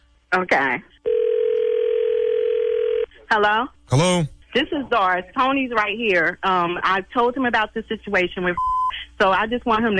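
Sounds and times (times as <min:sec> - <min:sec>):
speech: 0:00.3 - 0:01.0, 0:03.3 - 0:09.9
telephone dial tone while placing a three-way call: 0:01.1 - 0:03.1.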